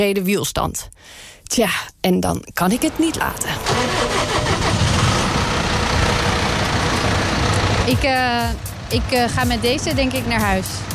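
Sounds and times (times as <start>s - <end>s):
speech: 0.0s - 4.3s, 7.9s - 10.9s
tractor engine running: 2.7s - 10.9s.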